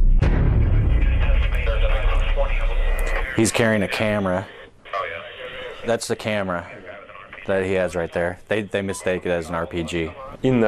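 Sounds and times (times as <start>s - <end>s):
30mm cannon fire from an Apache helicopter: 0.0s - 3.3s
low rumble and hiss: 0.0s - 10.6s
faint voices: 0.6s - 10.6s
speech: 3.4s - 4.6s, 5.8s - 6.8s, 7.4s - 10.6s.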